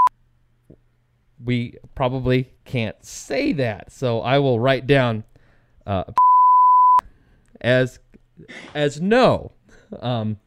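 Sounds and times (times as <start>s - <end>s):
speech: 1.4s - 6.2s, 7.6s - 10.4s
buzzer electronic beep: 6.2s - 7.0s.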